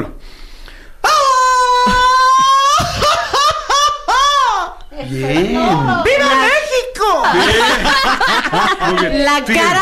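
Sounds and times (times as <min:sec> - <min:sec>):
person letting out a traditional Mexican grito: 0:01.0 - 0:02.8, 0:05.2 - 0:07.3
laughter: 0:01.8 - 0:04.8, 0:07.3 - 0:09.8
speech: 0:05.2 - 0:06.6, 0:07.3 - 0:09.8.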